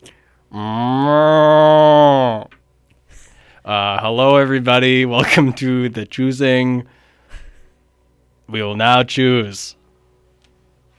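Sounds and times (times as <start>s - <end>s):
speech: 0.0s - 1.4s, 4.1s - 7.4s, 8.5s - 9.8s
cow mooing: 0.5s - 2.5s.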